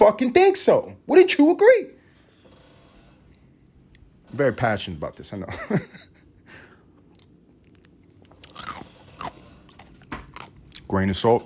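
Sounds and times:
speech: 0.0s - 2.0s, 4.3s - 6.1s, 10.9s - 11.4s
laughter: 5.5s - 6.6s
person chewing ice cubes: 7.0s - 11.0s.

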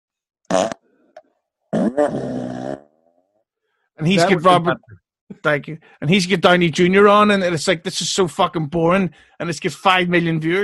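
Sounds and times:
loud buzzy mouth fart noises: 0.5s - 0.8s, 1.7s - 3.1s
speech: 0.5s - 0.8s, 2.0s - 2.8s, 4.0s - 10.6s.

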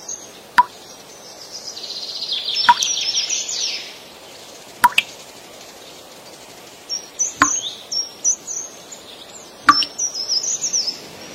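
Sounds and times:
birds chirping brightly: 0.0s - 11.1s
drizzle dripping from the eaves in sharp plops: 2.7s - 3.0s, 4.8s - 5.2s, 7.4s - 7.6s, 9.7s - 10.0s.

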